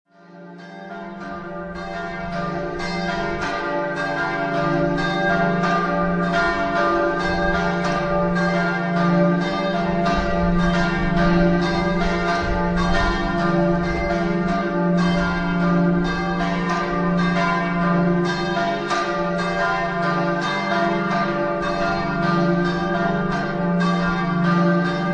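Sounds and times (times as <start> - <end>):
church bells in Camporosso: 0.1 - 25.1.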